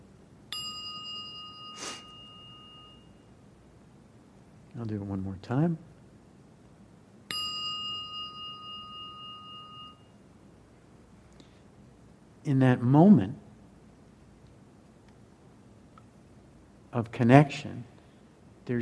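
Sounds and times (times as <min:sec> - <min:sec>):
meditation bell struck and ringing: 0:00.5 - 0:03.4, 0:07.3 - 0:10.3
speech: 0:04.8 - 0:05.9, 0:12.5 - 0:13.4, 0:17.0 - 0:17.9, 0:18.7 - 0:18.8.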